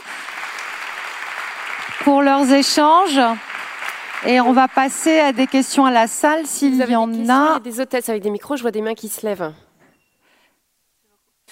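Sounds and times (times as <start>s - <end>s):
crowd clapping: 0.0s - 6.8s
speech: 2.0s - 3.5s, 4.2s - 9.6s.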